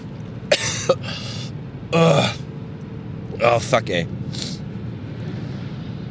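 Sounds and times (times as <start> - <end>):
person coughing harshly and chestily: 0.5 - 1.2
speech: 0.9 - 2.4, 3.4 - 4.4.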